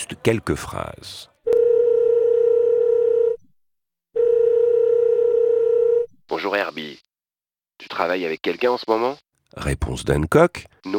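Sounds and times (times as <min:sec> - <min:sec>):
speech: 0:00.0 - 0:01.3, 0:06.3 - 0:07.0, 0:07.8 - 0:10.9
telephone dial tone: 0:01.5 - 0:03.4, 0:04.2 - 0:06.1.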